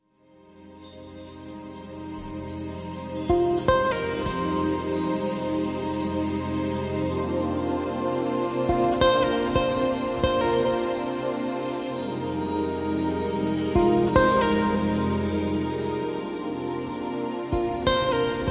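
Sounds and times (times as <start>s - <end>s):
lead guitar: 3.2s - 18.4s.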